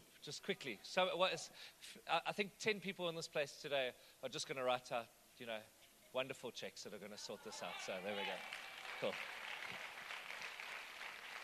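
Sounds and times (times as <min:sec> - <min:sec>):
speech: 0:00.2 - 0:09.8
crowd applauding with many hands clapping: 0:07.8 - 0:11.4.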